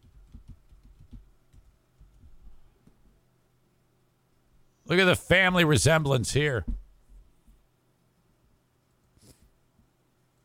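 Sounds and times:
typing on a computer keyboard: 0.0 - 2.3
low hum: 0.0 - 10.4
speech: 4.9 - 6.7.

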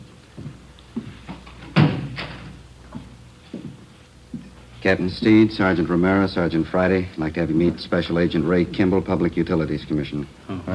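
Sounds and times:
door swinging shut with a solid thud: 1.7 - 2.5
speech: 4.8 - 10.7.

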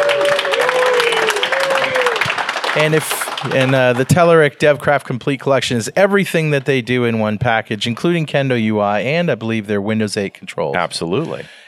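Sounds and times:
voices whooping: 0.0 - 2.3
crowd applauding: 0.0 - 4.6
speech: 2.8 - 11.6.

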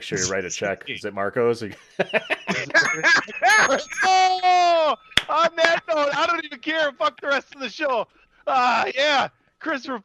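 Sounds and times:
lively people laughing: 0.0 - 8.0
speech: 0.0 - 10.0
bell ringing: 2.0 - 6.4.

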